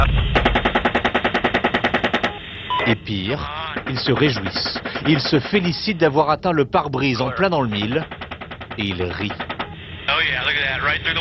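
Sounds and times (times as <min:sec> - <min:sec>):
roaring blast: 0:00.0 - 0:02.1
machine gun fire from a helicopter aimed at an ambulance: 0:00.0 - 0:02.4, 0:03.6 - 0:05.8, 0:07.6 - 0:09.8
speech: 0:02.9 - 0:08.2, 0:08.8 - 0:09.5, 0:10.1 - 0:11.1.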